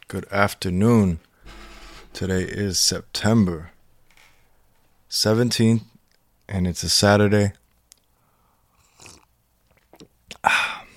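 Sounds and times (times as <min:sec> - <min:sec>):
speech: 0:00.1 - 0:01.3, 0:02.2 - 0:03.7, 0:05.1 - 0:05.9, 0:06.5 - 0:07.6, 0:10.4 - 0:10.6
soft mouth sounds: 0:08.7 - 0:10.9.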